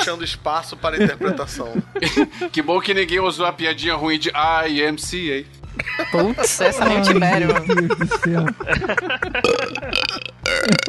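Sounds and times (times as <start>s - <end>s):
laughter: 0.0s - 3.2s, 5.8s - 10.3s
speech: 0.0s - 10.8s
long loud rumbling burp: 9.4s - 10.8s.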